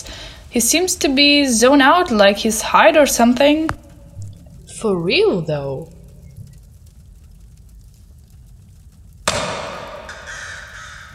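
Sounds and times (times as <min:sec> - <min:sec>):
speech: 0:00.5 - 0:03.8, 0:04.8 - 0:06.0
quiet low rumble: 0:02.4 - 0:09.3
loud harsh crow caw: 0:09.6 - 0:11.1.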